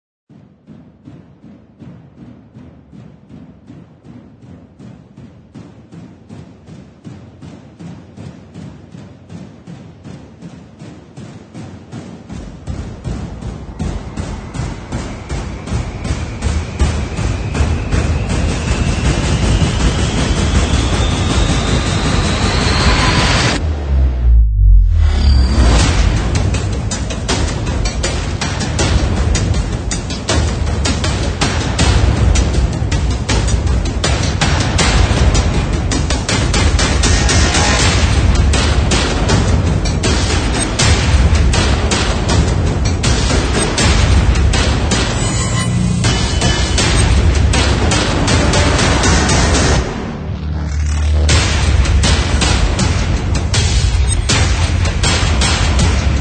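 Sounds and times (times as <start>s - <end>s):
hybrid trailer percussion: 0.3s - 56.2s
hybrid trailer sound effects: 13.8s - 26.6s, 43.2s - 56.2s.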